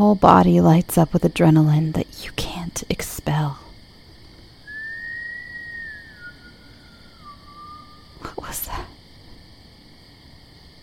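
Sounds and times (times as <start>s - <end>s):
speech: 0.0s - 3.6s
person whistling outdoors on a cold night: 4.7s - 8.8s
steady high-pitched drone: 4.7s - 8.8s.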